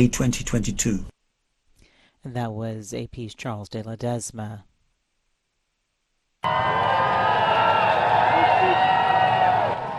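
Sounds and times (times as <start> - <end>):
speech: 0.0 - 1.1, 2.2 - 4.7, 6.4 - 7.0
large crowd in Berlin cheering loudly as a monarch arrives: 6.4 - 9.9.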